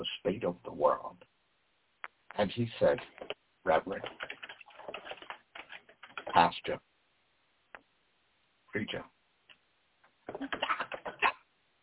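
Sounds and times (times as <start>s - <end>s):
speech: 0.0s - 1.3s, 2.4s - 4.3s, 6.4s - 6.9s, 8.7s - 9.1s, 10.3s - 10.8s
loud typing on a computer keyboard: 3.1s - 6.4s, 10.3s - 11.2s.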